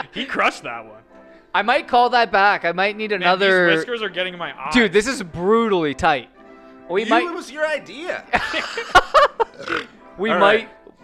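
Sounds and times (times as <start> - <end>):
speech: 0.2 - 6.3, 6.9 - 10.8
laughter: 8.2 - 9.9
person burping loudly: 9.4 - 10.0.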